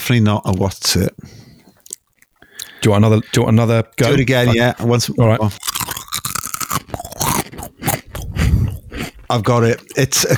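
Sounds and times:
speech: 0.1s - 1.4s, 2.8s - 5.8s, 9.3s - 10.3s
square potato crisp being bitten and chewed: 1.6s - 2.8s, 5.4s - 10.0s.

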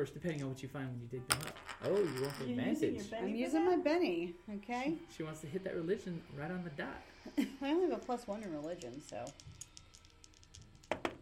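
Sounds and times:
speech: 0.0s - 9.5s
pink dice clattering onto a tabletop: 1.3s - 2.6s, 8.7s - 11.2s.

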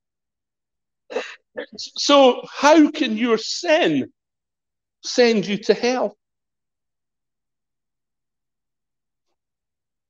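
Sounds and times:
abrupt breathy sneeze: 1.1s - 1.9s
speech: 1.7s - 4.2s, 5.0s - 6.2s.

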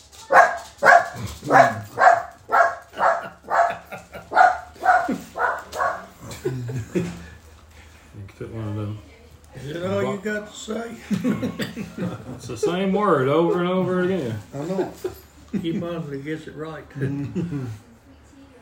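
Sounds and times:
dog barking: 0.2s - 6.2s
laughter: 2.8s - 8.0s, 10.8s - 16.2s, 16.9s - 17.9s
speech: 6.9s - 7.2s, 8.3s - 17.9s.

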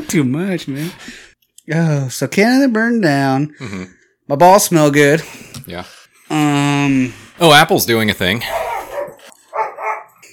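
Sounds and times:
speech: 0.1s - 8.7s
dog barking in short sharp yaps: 8.4s - 10.2s.

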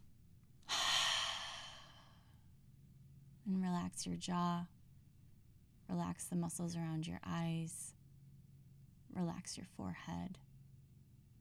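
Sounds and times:
long breath drawn in during a guided relaxation exercise: 0.7s - 2.1s
speech: 3.4s - 4.8s, 5.9s - 8.0s, 9.1s - 10.5s.

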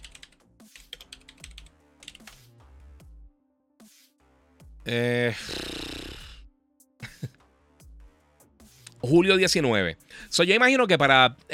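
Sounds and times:
typing on a computer keyboard: 0.0s - 2.4s
speech: 4.9s - 5.8s, 9.0s - 11.5s.

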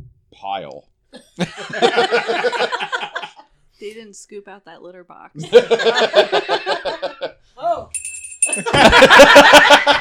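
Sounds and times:
speech: 0.3s - 3.0s, 3.8s - 8.0s, 8.6s - 9.9s
laughter: 1.2s - 3.5s, 5.4s - 7.4s, 8.5s - 9.9s
single bright bell ding: 8.0s - 8.9s.

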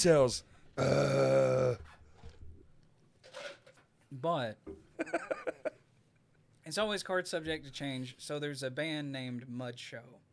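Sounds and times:
speech: 0.0s - 1.9s, 4.1s - 5.8s, 6.7s - 10.2s
deep bellowing burp: 0.8s - 1.9s.

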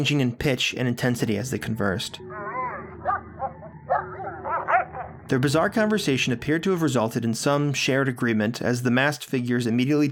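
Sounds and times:
speech: 0.0s - 2.4s, 5.3s - 10.0s
steady low hum: 1.4s - 7.4s
dog whining and yipping: 2.3s - 5.1s.

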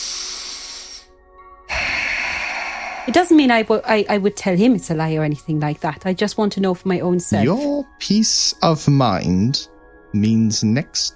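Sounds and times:
man breathing deeply and heavily: 0.0s - 3.8s
speech: 3.1s - 11.1s.

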